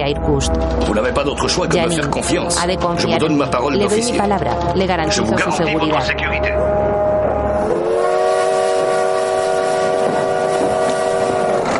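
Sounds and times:
speech: 0.0 - 7.1
train rumbling on rails at Nizhneudinsk railway station: 0.4 - 11.7
train horn blaring: 6.6 - 11.7.

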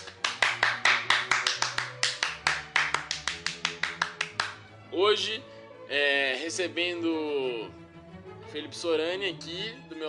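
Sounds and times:
rhythmic clapping beat: 0.0 - 4.8
speech: 5.0 - 7.8, 8.5 - 10.0.

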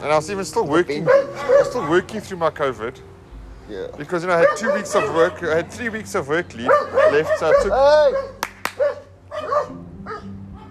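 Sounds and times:
speech: 0.0 - 3.1, 3.7 - 8.9
dogs barking: 0.9 - 2.4, 4.1 - 10.6.

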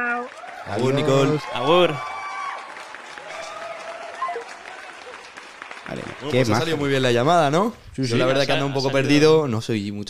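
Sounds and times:
crowd applauding: 0.0 - 7.7
brief cheer: 0.1 - 6.3
speech: 0.2 - 2.1, 5.9 - 10.0.

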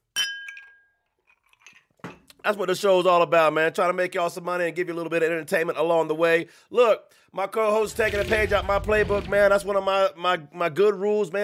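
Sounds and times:
glasses clinking in a toast: 0.1 - 2.2
speech: 2.4 - 11.4.

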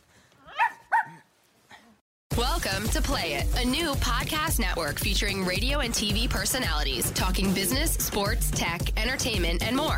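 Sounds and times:
small dog barking: 0.5 - 1.3
speech: 2.5 - 9.9.

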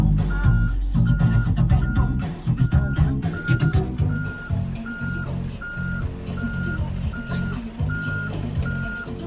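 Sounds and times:
loud rumbling diesel engine of reversing vehicle: 0.0 - 9.2
vehicle backup alarm beeping: 0.3 - 9.2.

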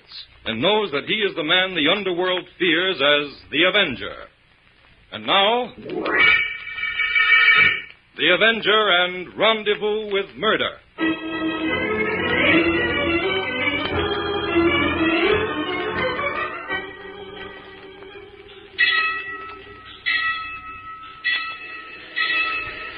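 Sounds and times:
speech: 0.1 - 4.3, 5.1 - 6.4, 8.2 - 11.6
steady tonal backdrop: 5.8 - 8.0, 11.0 - 22.9
train approaching and passing: 11.0 - 22.9.

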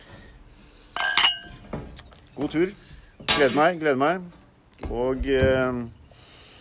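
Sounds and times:
glasses clinking in a toast: 1.0 - 1.6
speech: 2.4 - 6.0.

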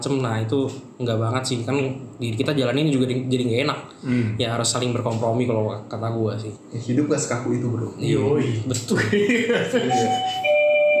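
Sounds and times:
speech: 0.0 - 10.5
laughter: 8.9 - 10.5
call bell chime: 9.8 - 10.9.

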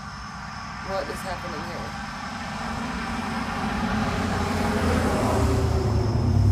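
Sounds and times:
speech: 0.9 - 3.0
car driving way too fast around a turn: 1.9 - 6.5.

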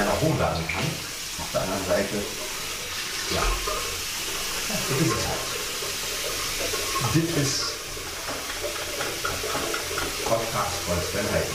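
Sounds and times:
water running from a tap: 0.0 - 11.5
speech: 0.2 - 2.5, 3.3 - 4.1, 4.7 - 5.6, 6.6 - 7.8, 8.6 - 11.5.

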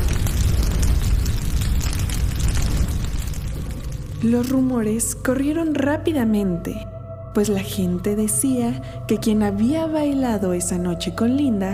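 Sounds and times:
large heavy booming explosion with deep rumble: 0.0 - 5.2
speech: 4.2 - 11.7.

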